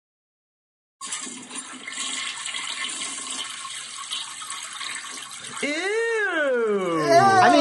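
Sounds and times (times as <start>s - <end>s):
toilet flushing: 1.0s - 7.5s
wavering high vocal sound: 5.6s - 7.5s.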